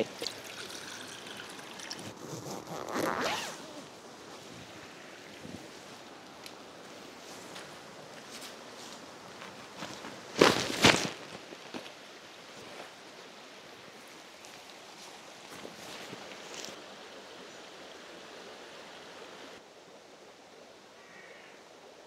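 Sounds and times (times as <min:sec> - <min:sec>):
steady rush of a stream: 0:00.0 - 0:20.4
tent rustling while being packed away: 0:01.9 - 0:06.1, 0:06.8 - 0:11.9, 0:12.5 - 0:13.0, 0:14.4 - 0:16.8
tent being unzipped: 0:02.0 - 0:03.9, 0:10.4 - 0:11.2.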